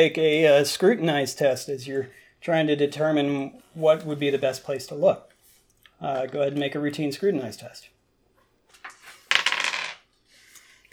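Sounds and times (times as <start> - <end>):
speech: 0.0 - 5.3, 6.0 - 7.9
dice rolling across a hard table: 8.7 - 10.1.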